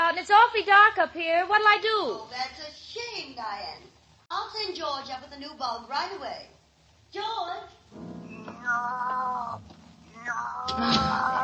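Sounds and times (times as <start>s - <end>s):
speech: 0.2s - 8.1s, 8.7s - 11.4s
cat meowing and yowling: 8.4s - 11.4s.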